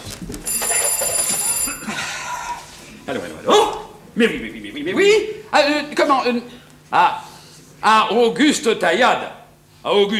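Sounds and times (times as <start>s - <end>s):
low noise: 0.0s - 10.1s
telephone bell ringing: 0.5s - 2.4s
speech: 3.1s - 7.2s, 7.8s - 10.1s.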